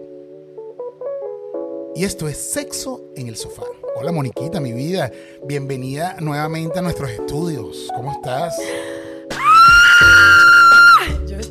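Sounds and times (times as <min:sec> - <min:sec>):
speech: 0:02.0 - 0:08.9
woman screaming with excitement: 0:09.4 - 0:11.1.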